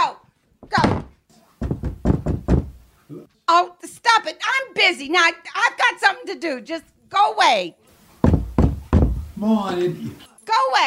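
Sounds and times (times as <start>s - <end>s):
heavy door thudding shut: 0.6s - 2.8s, 8.2s - 9.4s
dull rapid thumps of wood: 0.6s - 2.9s, 8.2s - 9.5s
speech: 3.5s - 7.8s, 9.4s - 10.8s.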